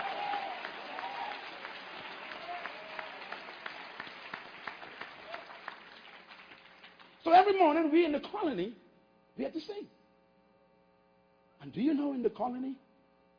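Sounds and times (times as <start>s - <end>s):
audience applauding: 0.0s - 7.6s
speech: 7.3s - 8.8s, 9.4s - 10.0s, 11.6s - 12.8s.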